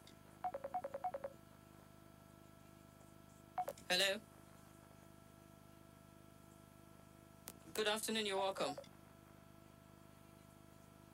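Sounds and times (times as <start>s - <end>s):
incoming WhatsApp call ringtone beeps: 0.4s - 1.4s
speech: 3.9s - 4.3s, 7.8s - 8.9s.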